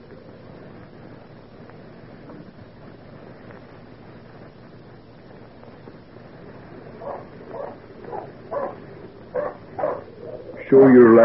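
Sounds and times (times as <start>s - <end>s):
dog barking: 7.0s - 10.1s
speech: 10.7s - 11.2s.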